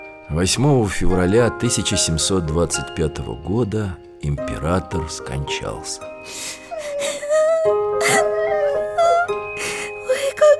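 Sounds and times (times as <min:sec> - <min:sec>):
speech: 0:00.3 - 0:08.3
child whimpering and crying: 0:06.3 - 0:10.5.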